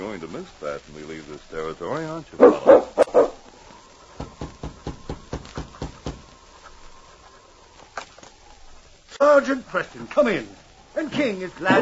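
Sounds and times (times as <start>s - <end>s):
faint steady tone: 0.0s - 11.8s
speech: 0.2s - 2.9s, 9.5s - 11.8s
sled dog, lead dog of a Mounted Police dog team, barking: 2.4s - 3.4s.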